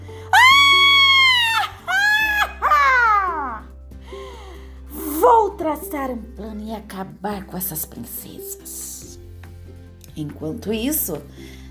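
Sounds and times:
person imitating a furious witch's shrill scream: 0.3s - 3.6s
speech: 5.7s - 8.8s, 10.2s - 11.5s.

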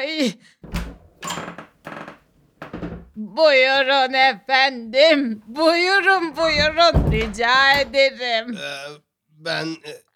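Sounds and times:
speech: 0.2s - 0.8s, 3.4s - 10.1s
door opening with creaking handle and hinges: 0.6s - 3.2s, 6.3s - 8.1s.

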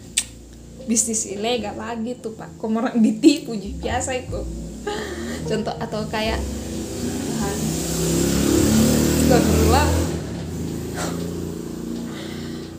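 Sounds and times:
speech: 0.9s - 6.6s, 8.0s - 8.4s, 9.3s - 10.1s
motorcycle revving while passing by outside: 3.7s - 12.7s.

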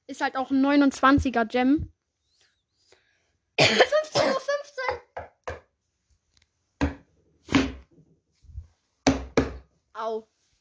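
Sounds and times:
speech: 0.1s - 2.0s, 3.6s - 5.0s, 10.0s - 10.3s
sharp knocks on a wooden table: 4.9s - 5.7s, 6.8s - 7.8s, 9.0s - 9.6s.

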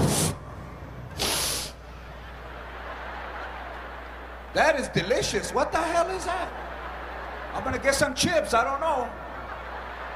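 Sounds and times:
voice imitating the hiss of pepper spray: 1.2s - 1.8s
laughter: 1.9s - 10.1s
speech: 4.5s - 6.7s, 7.6s - 9.2s.

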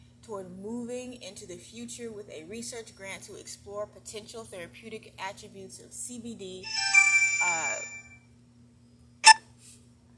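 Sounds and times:
speech: 0.3s - 7.9s
phone ringtone short electronic melody: 6.6s - 8.2s.

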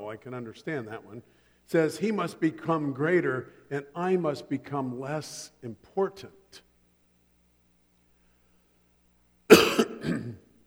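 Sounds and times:
speech: 0.1s - 6.7s
person coughing harshly: 9.5s - 10.5s.

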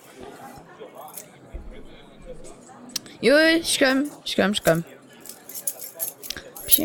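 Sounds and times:
speech: 2.3s - 5.0s, 6.7s - 6.8s
bunch of keys jingling as a key is fetched: 5.3s - 6.8s.

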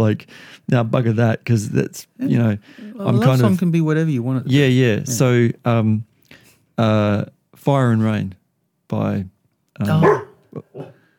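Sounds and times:
speech: 0.0s - 6.1s, 6.8s - 11.0s
dog barking in a recording studio: 9.9s - 11.0s.

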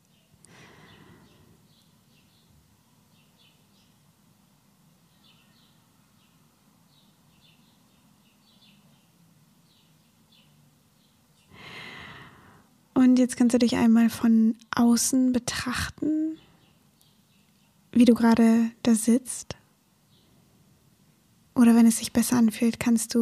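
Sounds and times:
birds chirping outdoors: 0.0s - 4.2s, 5.0s - 12.5s, 13.4s - 19.2s, 20.0s - 20.5s
low ambient hum: 0.0s - 23.2s
loud breathy exhale: 0.5s - 1.6s, 11.5s - 12.7s
speech: 13.0s - 16.4s, 18.0s - 19.6s, 21.6s - 23.2s.

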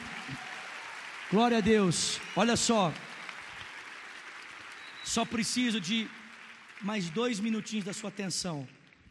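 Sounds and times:
crowd clapping in a large room: 0.0s - 9.0s
speech: 1.3s - 3.1s, 5.2s - 6.2s, 6.8s - 8.8s.

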